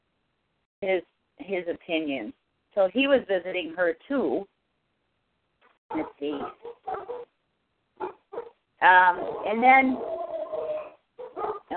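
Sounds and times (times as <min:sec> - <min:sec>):
speech: 0:00.8 - 0:04.5, 0:05.9 - 0:07.2, 0:08.8 - 0:10.1
dogs barking excitedly: 0:05.9 - 0:07.3, 0:08.0 - 0:08.6, 0:09.2 - 0:11.7.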